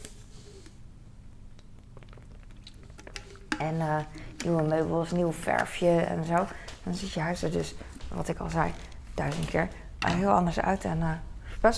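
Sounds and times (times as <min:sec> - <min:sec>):
low steady hum: 0:00.0 - 0:11.7
person taking a quick sip of water: 0:01.6 - 0:04.5
speech: 0:03.6 - 0:11.7.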